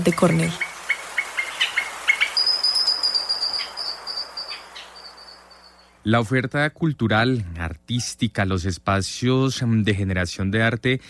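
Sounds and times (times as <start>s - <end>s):
speech: 0.0s - 0.6s, 6.0s - 11.0s
mountain grackle singing chirps and a high whistle: 0.0s - 6.0s
hiss: 0.0s - 11.0s.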